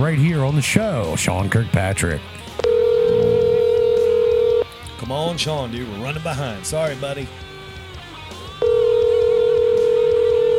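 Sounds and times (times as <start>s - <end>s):
speech: 0.0s - 2.7s, 5.0s - 7.5s
phone line ringback tone on an outgoing call: 2.6s - 4.7s, 8.6s - 10.5s.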